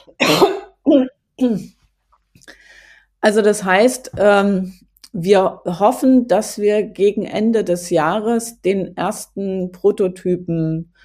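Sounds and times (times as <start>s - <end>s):
speech: 0.0s - 1.8s, 3.2s - 11.0s
person coughing: 0.1s - 1.1s.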